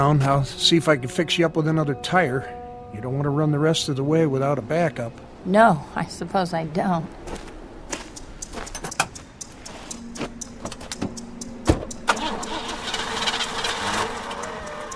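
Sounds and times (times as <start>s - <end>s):
speech: 0.0s - 7.4s
car engine cranking without starting: 8.5s - 14.9s.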